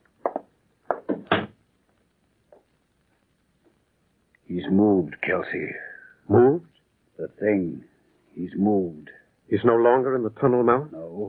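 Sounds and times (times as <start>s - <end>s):
door pushed shut with wooden thumps and clunks: 1.0s - 1.5s
speech: 4.5s - 11.2s.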